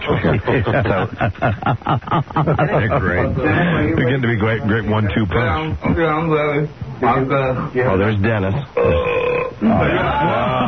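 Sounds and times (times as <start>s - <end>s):
laughter: 0.0s - 4.1s
speech: 0.1s - 10.6s
man burping loudly: 8.8s - 10.1s.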